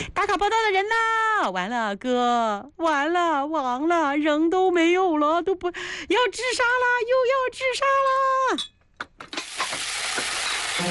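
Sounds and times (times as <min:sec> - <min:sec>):
speech: 0:00.0 - 0:09.9
chilies stir-frying in hot oil in a wok: 0:09.4 - 0:10.8
wok clattering: 0:09.4 - 0:10.8.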